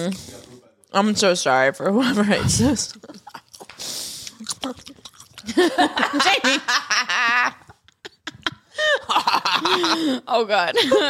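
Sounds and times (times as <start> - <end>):
speech: 0.0 - 3.2, 5.5 - 7.6, 9.1 - 11.0
wet mouth sounds: 2.4 - 5.6
food being chewed with crunchy bites: 2.8 - 5.7
laughter: 5.4 - 11.0.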